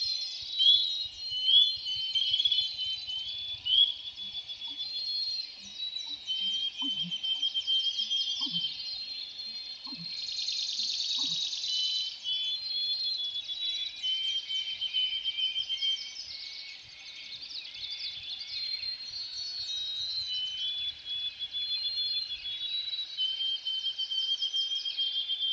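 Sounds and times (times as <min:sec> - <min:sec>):
chorus of bird chirps: 0:00.0 - 0:25.5
spring peeper frog peeps in Voyageurs National Park: 0:06.4 - 0:07.2.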